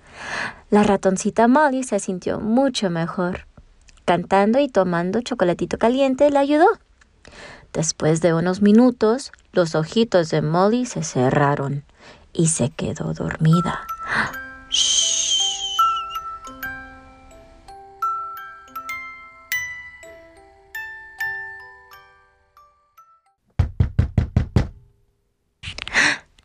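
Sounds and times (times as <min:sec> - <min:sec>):
speech: 0:00.7 - 0:03.5, 0:04.1 - 0:15.4
gentle tinkling melody: 0:13.4 - 0:23.4
firm knocks on a door: 0:23.6 - 0:24.8.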